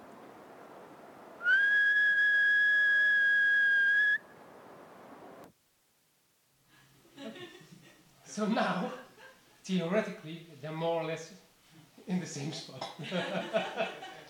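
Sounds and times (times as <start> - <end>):
faint hiss: 0.0 - 14.2
steady high human whistle to sync two recordings: 1.4 - 4.2
laughter: 7.1 - 9.6, 12.9 - 14.2
speech: 8.4 - 9.0, 9.6 - 11.4, 12.1 - 14.2.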